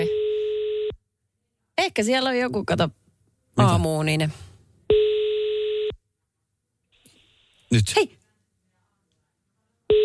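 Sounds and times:
telephone ringback tone in short electronic pulses on an unanswered call: 0:00.0 - 0:01.0, 0:04.9 - 0:06.0
speech: 0:01.9 - 0:03.0, 0:03.6 - 0:04.5, 0:07.7 - 0:08.2.

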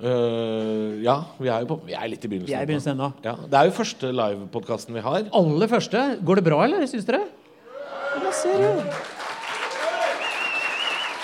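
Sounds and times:
speech: 0:00.0 - 0:07.4, 0:08.3 - 0:09.1
shouts: 0:07.6 - 0:10.3
live crowd clapping: 0:08.2 - 0:11.2
high whistles: 0:10.2 - 0:11.2.

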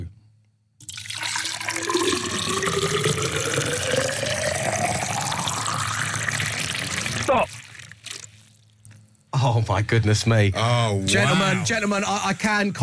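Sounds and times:
liquid pouring into a vessel: 0:00.8 - 0:08.8
speech: 0:09.7 - 0:12.8.

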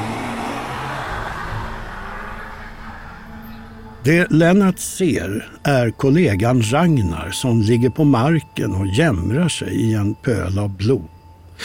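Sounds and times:
car engine revving as the car peels out from a courtyard: 0:00.0 - 0:08.6
speech: 0:04.0 - 0:11.6.

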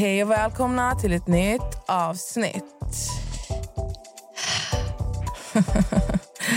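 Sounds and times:
speech: 0:00.1 - 0:03.2, 0:05.6 - 0:05.9
loud breaths blown into a microphone: 0:03.0 - 0:05.4
laughter: 0:05.4 - 0:06.5.

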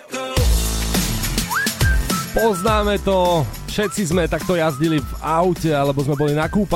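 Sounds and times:
driving pop beat with thumping bass and crisp percussion hits: 0:00.4 - 0:06.7
whistled melody in a pop song: 0:01.4 - 0:06.7
speech: 0:02.4 - 0:06.7.

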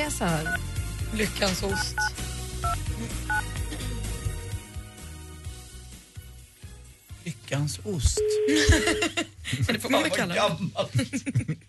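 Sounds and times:
speech: 0:00.1 - 0:03.9, 0:07.2 - 0:11.6
telephone dual-pitch keypad dialing beeps: 0:01.7 - 0:03.4
laughter: 0:08.5 - 0:10.0, 0:10.8 - 0:11.6.

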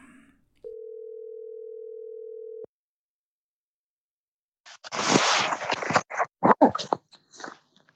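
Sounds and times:
telephone ringback tone of outgoing call: 0:00.6 - 0:02.7
crackling rustling noise of connecting call: 0:04.7 - 0:07.9.

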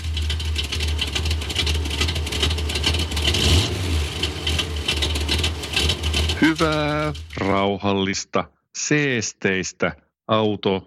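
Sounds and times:
Audi e-tron Sportback 55 Quattro S-Line car driving on a test drive: 0:00.0 - 0:07.7
speech: 0:06.4 - 0:10.8.

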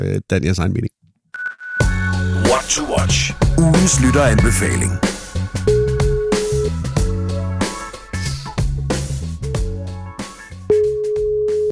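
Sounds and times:
speech: 0:00.0 - 0:01.0, 0:02.5 - 0:05.2
busy music with drums and bass: 0:01.8 - 0:11.7
telephone ringing tone while a call connects: 0:05.7 - 0:06.7, 0:10.7 - 0:11.7.

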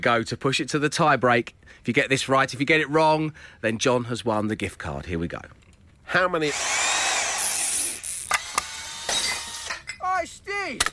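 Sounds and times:
speech: 0:00.0 - 0:06.8, 0:10.7 - 0:10.9
power drill whirring: 0:06.4 - 0:09.8.

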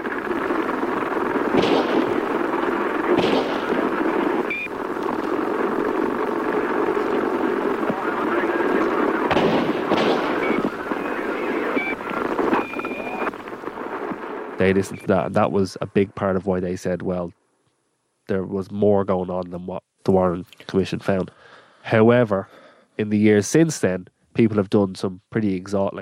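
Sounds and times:
gunshots on an open police radio channel: 0:00.0 - 0:15.0
radio noise hiss and droning rumble: 0:00.0 - 0:17.4, 0:18.2 - 0:26.0
speech: 0:14.6 - 0:17.4, 0:18.3 - 0:26.0.

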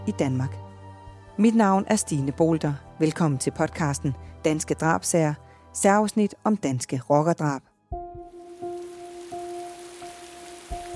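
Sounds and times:
speech: 0:00.0 - 0:00.6, 0:01.4 - 0:07.7
steady pouring rain hissing: 0:08.3 - 0:10.9.

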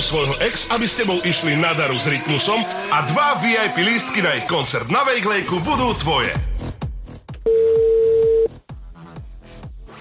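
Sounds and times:
speech: 0:00.0 - 0:06.6
electronic phone ringback tone: 0:07.5 - 0:08.5.

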